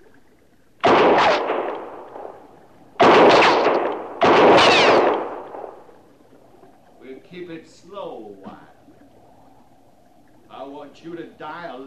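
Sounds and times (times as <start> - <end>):
gunshots: 0.8 - 5.9
speech: 10.7 - 11.8.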